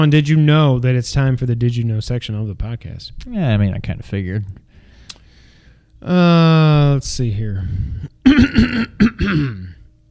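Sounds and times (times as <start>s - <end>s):
speech: 0.0s - 4.6s, 6.0s - 9.7s
drawn-out gravelly cough: 8.2s - 9.8s
person clearing throat: 8.2s - 9.9s.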